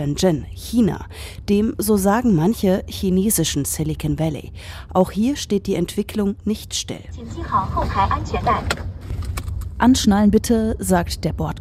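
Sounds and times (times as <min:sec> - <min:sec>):
speech: 0:00.0 - 0:08.9, 0:09.8 - 0:11.5
engine and road rumble inside a driverless car in city traffic in Shenzhen: 0:05.6 - 0:11.5.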